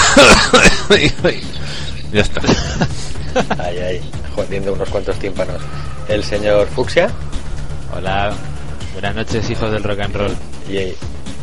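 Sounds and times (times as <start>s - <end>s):
person coughing: 0.0s - 1.0s
laughter: 0.0s - 4.0s
speech: 0.2s - 11.2s.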